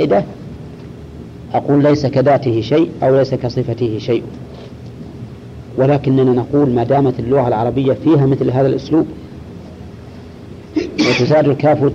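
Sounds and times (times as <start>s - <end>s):
speech: 0.0s - 0.4s, 1.5s - 4.4s, 5.8s - 9.2s, 11.0s - 11.9s
steady low rumble: 0.0s - 11.9s
single short sharp sneeze: 10.8s - 11.3s.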